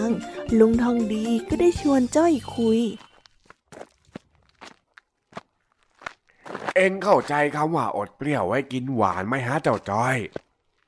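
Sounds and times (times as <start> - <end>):
speech: 0.1 - 3.1, 6.8 - 10.4
crunchy footsteps of two people walking on a gritty surface: 2.7 - 7.8, 8.8 - 10.8.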